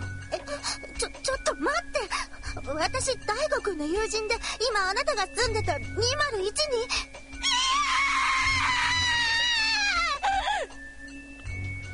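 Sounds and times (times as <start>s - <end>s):
speech: 1.0s - 7.1s
woman screaming: 7.4s - 10.7s.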